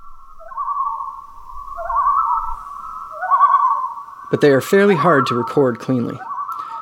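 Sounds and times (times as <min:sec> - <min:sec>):
faint low rumble: 0:00.0 - 0:04.3
common loon calling at night in Canada: 0:00.0 - 0:06.8
speech: 0:04.3 - 0:06.3.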